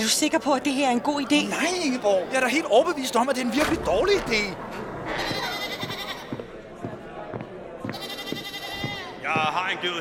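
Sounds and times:
speech: 0.0s - 5.3s, 9.3s - 10.0s
goat bleating: 5.1s - 6.3s, 7.9s - 9.2s.

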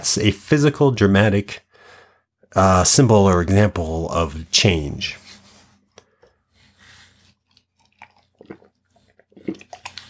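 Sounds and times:
speech: 0.0s - 1.6s, 2.5s - 5.2s
quiet breaths: 1.6s - 2.5s, 5.2s - 7.6s
person sipping water: 5.6s - 10.0s
wet lip smacks: 7.2s - 10.0s
swallow: 7.5s - 10.0s.

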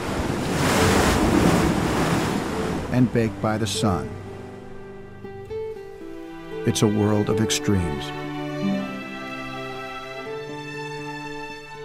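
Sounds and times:
ocean waves crashing on a rocky tide-pool shore: 0.0s - 4.8s
speech: 3.0s - 4.2s, 6.6s - 8.9s.

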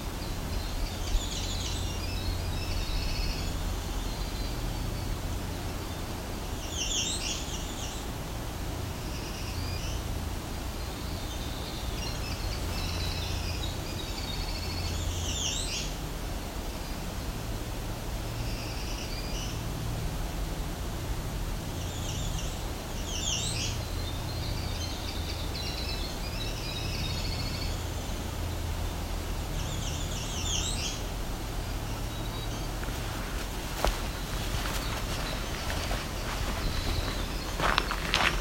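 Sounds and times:
black-throated green warbler singing: 0.0s - 8.2s, 10.8s - 16.0s, 21.7s - 38.4s
steady hiss of noise: 0.0s - 38.4s.

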